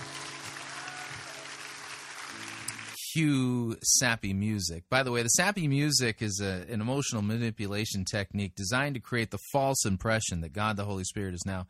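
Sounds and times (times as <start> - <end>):
church audience clapping in praise in an auditorium: 0.0 - 3.0
speech: 3.2 - 11.6.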